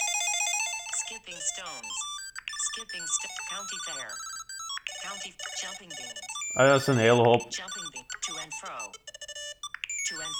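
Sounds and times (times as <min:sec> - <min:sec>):
melodic phone ringtone previewed while browsing selectable tones: 0:00.0 - 0:10.3
speech: 0:01.1 - 0:09.2, 0:10.1 - 0:10.3.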